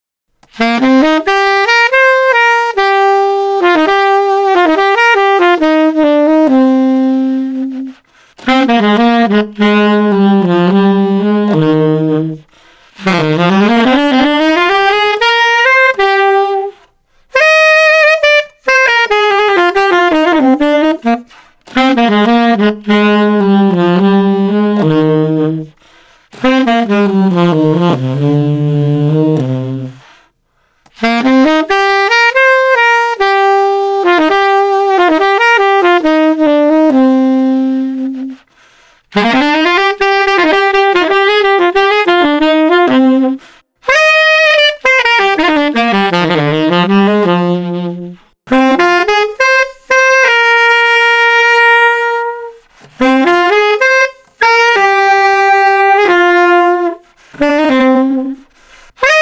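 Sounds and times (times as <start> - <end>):
emotional saxophone playing: 0.4 - 59.2.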